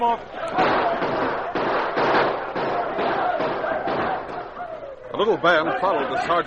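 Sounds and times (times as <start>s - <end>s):
speech: 0.0s - 0.6s, 5.2s - 6.4s
dense gunfire volleys fired into the night in a radio drama: 0.4s - 4.8s.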